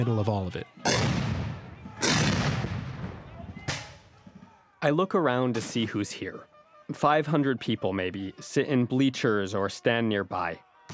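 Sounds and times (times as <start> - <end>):
speech: 0.0 - 1.2, 4.8 - 10.9
rifle crack at a battle reenactment: 0.9 - 2.7
cannon boom at a battle reenactment: 0.9 - 4.0.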